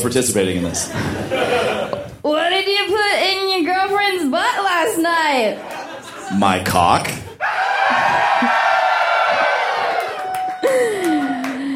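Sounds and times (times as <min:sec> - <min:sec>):
speech: 0:00.0 - 0:08.7
laughter: 0:00.8 - 0:02.2, 0:05.5 - 0:11.7
large audience screaming and shrieking: 0:07.4 - 0:11.7.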